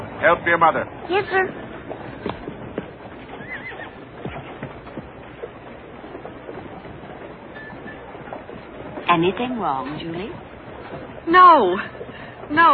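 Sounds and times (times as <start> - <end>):
horse hooves clip-clopping: 0.0 - 12.7
rustle: 0.0 - 12.7
speech: 0.2 - 2.4, 9.2 - 12.7
horses whinnying: 2.2 - 8.9.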